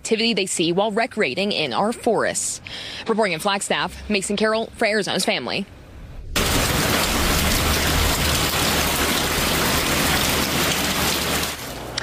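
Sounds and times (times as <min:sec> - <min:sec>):
speech: 0:00.1 - 0:05.8
rain falling on pools and decks: 0:06.4 - 0:12.0.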